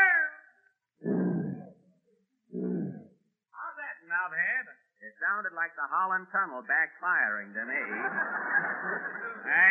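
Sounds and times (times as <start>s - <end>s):
person imitating a lion's roar: 1.0s - 1.8s, 2.5s - 3.2s
speech: 5.2s - 9.6s
laughter: 7.6s - 9.6s.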